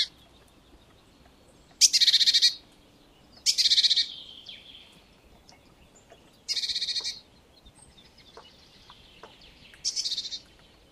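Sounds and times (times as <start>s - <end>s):
faint great tit chatter: 0.0s - 10.9s
Parus major churring call: 1.8s - 2.6s, 3.4s - 4.1s, 6.5s - 7.2s.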